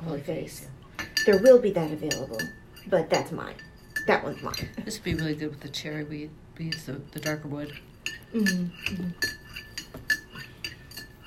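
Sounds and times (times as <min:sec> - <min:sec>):
speech: 0:00.2 - 0:09.4
spoon clinking against a cup stirring sugar into tea: 0:01.0 - 0:05.4, 0:06.7 - 0:11.2.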